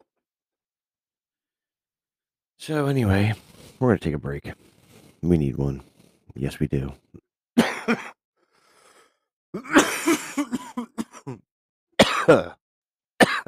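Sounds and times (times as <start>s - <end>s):
speech: 2.6s - 7.2s, 7.9s - 8.2s, 12.3s - 12.6s
person clearing throat: 7.6s - 8.2s, 9.6s - 11.4s, 12.0s - 12.6s, 13.2s - 13.4s
person coughing in rough bursts: 7.6s - 8.2s, 9.6s - 11.4s, 12.0s - 12.6s, 13.2s - 13.4s.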